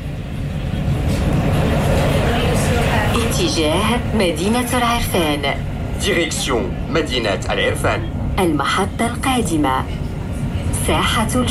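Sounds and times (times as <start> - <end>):
tram interior rumbling as it pulls away and rides: 0.0 - 11.4
speech: 3.6 - 10.0, 10.9 - 11.4.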